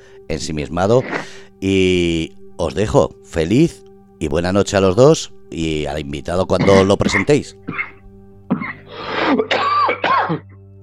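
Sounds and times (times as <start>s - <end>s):
low steady hum: 0.0s - 10.8s
speech: 0.3s - 7.8s
person in a loud coughing fit: 6.6s - 10.6s.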